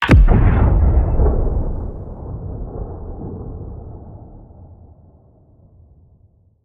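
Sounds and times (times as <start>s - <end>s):
warp sequence exit boom: 0.0s - 3.5s.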